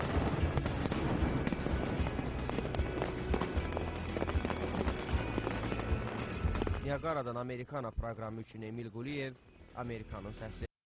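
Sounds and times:
fireworks crackling and popping over a waterfall: 0:00.0 - 0:07.2
speech: 0:06.9 - 0:10.7.

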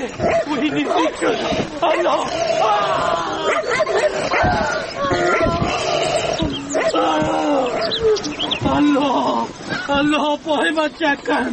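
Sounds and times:
speech: 0:00.0 - 0:05.5, 0:09.9 - 0:11.5
raised human voices: 0:00.0 - 0:10.0
dog barking and yelping: 0:00.2 - 0:02.2, 0:03.4 - 0:05.7, 0:06.5 - 0:08.5.

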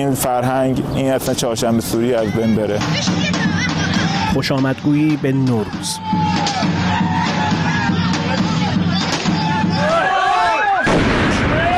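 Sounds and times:
speech: 0:00.0 - 0:03.6, 0:04.4 - 0:07.1
noisy shouting crowd: 0:02.0 - 0:11.7
homemade firecrackers exploding in the street: 0:10.8 - 0:11.7.

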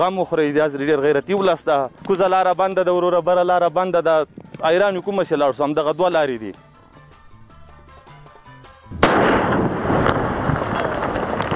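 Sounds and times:
speech: 0:00.0 - 0:06.7
landmine explosion in Maiwand district of Kandahar: 0:08.9 - 0:11.5.

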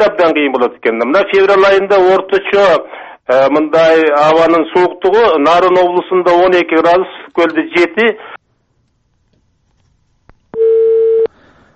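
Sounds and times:
speech: 0:00.0 - 0:08.4
steady telephone line beep after a dropped phone connection: 0:10.6 - 0:11.3.

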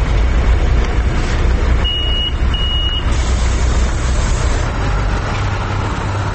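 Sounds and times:
busy roadside traffic rumble at a bus stop: 0:00.0 - 0:06.3
short high-pitched beeps: 0:01.8 - 0:03.1.

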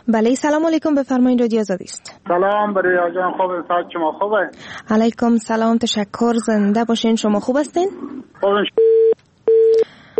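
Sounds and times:
speech: 0:00.1 - 0:08.9
telephone busy tone after a call is cut off: 0:08.8 - 0:10.1.

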